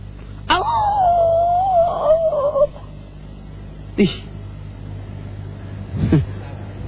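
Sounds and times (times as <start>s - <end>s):
dog howling: 0.5s - 3.0s.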